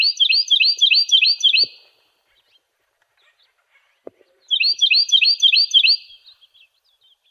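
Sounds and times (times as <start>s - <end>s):
cactus wren giving a raspy churring run: 0.0s - 1.8s, 4.4s - 7.2s.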